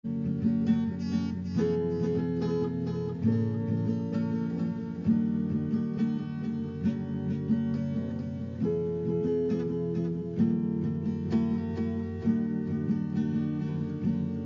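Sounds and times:
soft strum: 0.0s - 14.4s.

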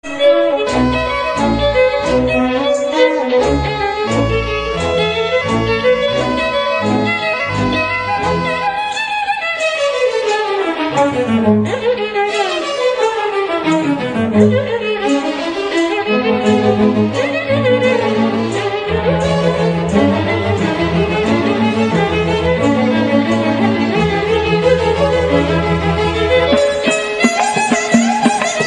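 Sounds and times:
violin fusion music: 0.0s - 28.6s.

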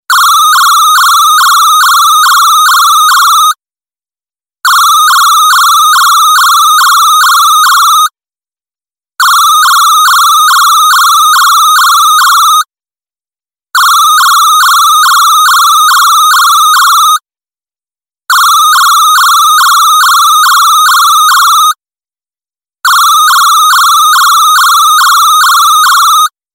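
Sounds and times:
alarm ringing: 0.1s - 3.6s, 4.7s - 8.2s, 9.2s - 12.7s, 13.8s - 17.2s, 18.3s - 21.8s, 22.9s - 26.3s.

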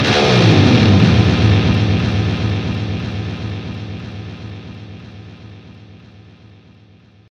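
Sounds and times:
double guitar dive: 0.0s - 5.5s.

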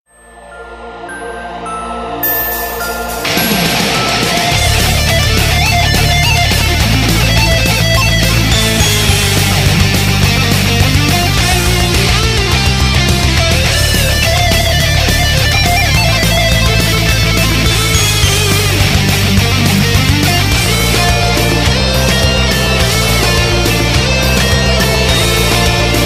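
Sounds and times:
power rock music: 1.5s - 26.0s.

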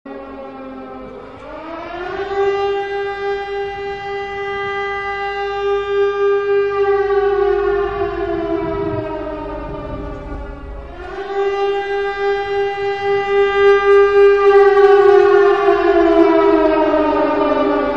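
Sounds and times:
horror horn: 0.1s - 17.9s.

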